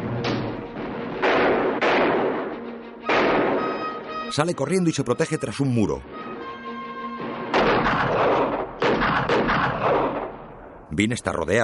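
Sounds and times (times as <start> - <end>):
gunshots in a shootout from a Western film: 0.2 - 4.0, 7.2 - 10.7
speech: 4.3 - 6.2, 10.9 - 11.6.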